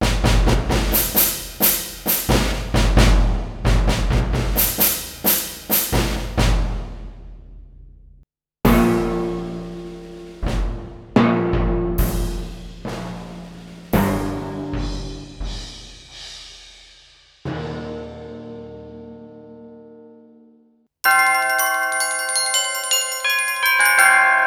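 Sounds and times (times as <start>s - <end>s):
orchestral percussion from a keyboard: 0.0s - 7.2s, 8.7s - 16.3s, 21.1s - 24.3s.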